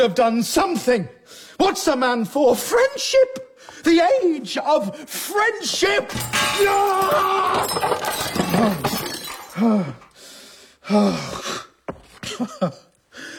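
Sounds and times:
speech: 0.0 - 10.0, 10.9 - 11.6, 12.2 - 12.8
man smashing glass and equipment: 6.1 - 10.1.

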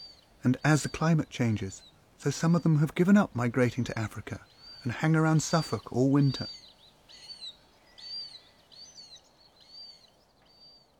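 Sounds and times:
Cetti's warbler singing: 0.0 - 10.9
low steady outdoor hiss: 0.0 - 10.9
speech: 0.4 - 6.6.

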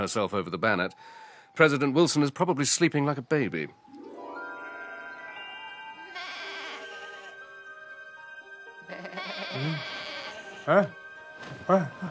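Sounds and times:
speech: 0.0 - 3.8, 10.7 - 11.0, 11.7 - 12.0
sheep bleating: 4.5 - 7.4, 8.9 - 11.0.

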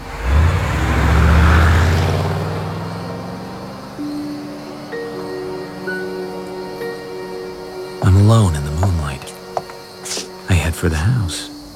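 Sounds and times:
car engine revving and driving off at night: 0.0 - 7.0
quiet outdoor ambience at night: 0.0 - 11.7
faint steady tones: 2.4 - 11.7
speech: 10.8 - 11.5.

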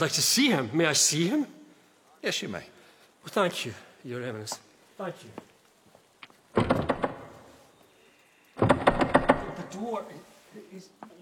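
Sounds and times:
speech: 0.0 - 1.6, 2.2 - 5.5, 9.8 - 11.2
creaks: 6.1 - 10.0
door rattling and thumping: 6.5 - 7.5, 8.6 - 9.8.

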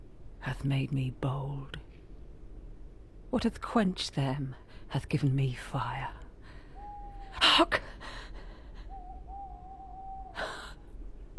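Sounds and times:
quiet hissy background: 0.0 - 11.3
speech: 0.4 - 1.8, 3.3 - 6.2, 7.6 - 7.8
owl shrieking with a thin drawn-out whistling tone: 6.8 - 7.6, 8.9 - 10.5.

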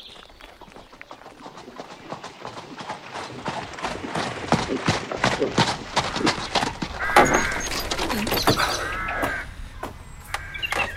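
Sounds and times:
horse hooves clip-clopping as a horse-drawn carriage passes: 0.0 - 9.4
birds cawing: 5.4 - 10.9.

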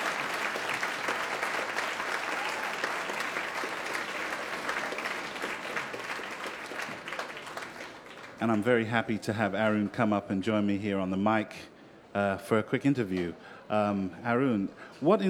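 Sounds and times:
audience applause after live performance: 0.0 - 8.8
speech: 8.4 - 15.2.

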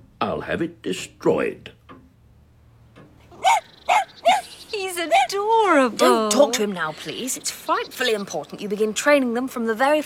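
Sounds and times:
speech: 0.4 - 1.8, 4.8 - 10.0
dog barking and whimpering: 3.3 - 5.4.

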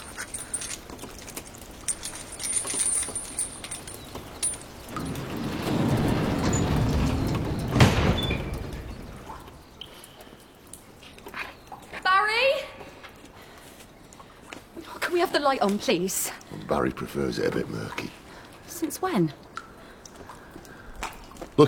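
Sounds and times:
faint noise: 0.0 - 21.6
door sliding open with low rumble ending in a clunk: 4.8 - 9.4
speech: 15.4 - 18.2, 18.9 - 19.4.

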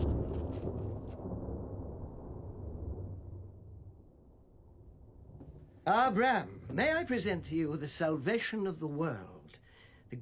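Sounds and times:
rolling thunder of an approaching storm: 0.0 - 5.7
speech: 5.8 - 9.4.

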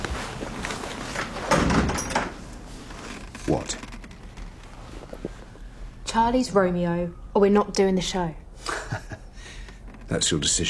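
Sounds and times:
door being shut indoors: 1.1 - 2.4
speech: 3.5 - 3.9, 6.2 - 9.0, 10.1 - 10.6.

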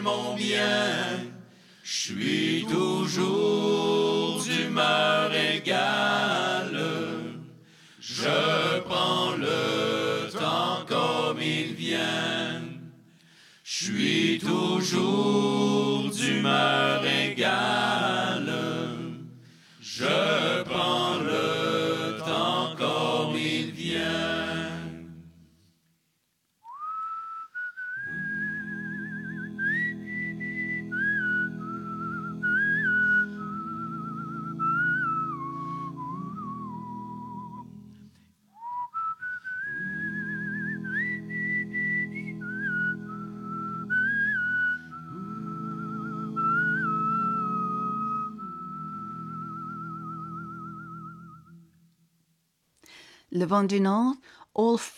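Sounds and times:
speech: 0.0 - 6.5, 13.8 - 18.2, 53.4 - 54.9
sustained low voices singing a cappella harmony: 0.0 - 13.1, 13.7 - 25.5, 28.0 - 38.2, 39.6 - 51.8
human whistling a lilting melody: 26.6 - 51.9.

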